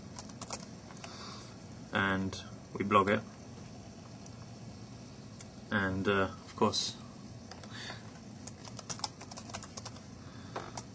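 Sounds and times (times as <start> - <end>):
steady low hum of room noise: 0.0 - 10.9
typing on a French-layout computer keyboard in an office: 0.1 - 0.7, 8.4 - 10.0, 10.7 - 10.9
speech: 2.0 - 3.4, 5.8 - 7.0.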